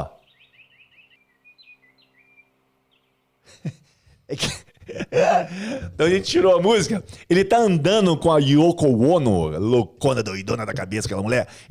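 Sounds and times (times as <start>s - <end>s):
birds singing with quick high chirping trills: 0.0s - 6.5s
laughter: 3.5s - 7.0s
speech: 3.6s - 11.6s
brief louder breathy sound: 5.1s - 6.0s.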